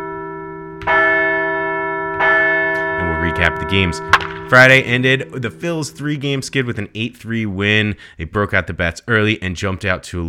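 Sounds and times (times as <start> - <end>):
bell ringing: 0.6 - 6.9
speech: 3.4 - 10.2.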